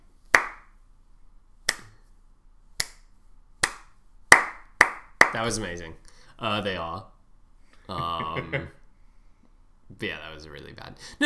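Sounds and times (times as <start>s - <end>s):
hands clapping: 0.4s - 0.7s, 1.7s - 2.0s, 2.8s - 3.0s, 3.6s - 5.6s
speech: 5.3s - 7.1s, 7.9s - 8.8s, 9.9s - 11.2s
laughter: 7.9s - 8.8s.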